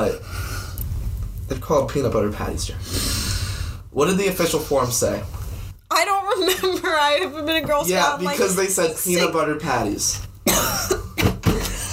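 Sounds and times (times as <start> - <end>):
speech: 0.0 - 0.4, 1.5 - 3.2, 3.9 - 11.0
harsh coughs: 10.4 - 11.9.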